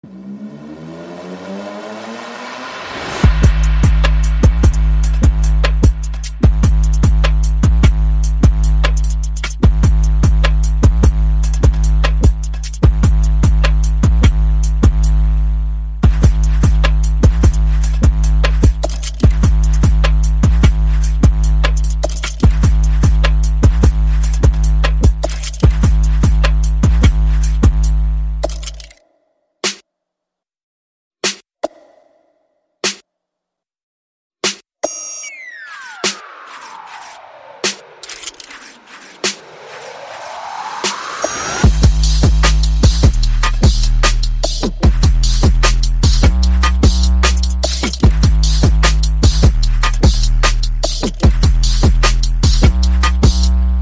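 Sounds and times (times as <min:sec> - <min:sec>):
percussion: 0:02.6 - 0:15.3, 0:16.0 - 0:29.0, 0:29.6 - 0:29.8, 0:31.2 - 0:33.1, 0:34.4 - 0:53.8
bass: 0:03.2 - 0:28.9, 0:41.6 - 0:53.8.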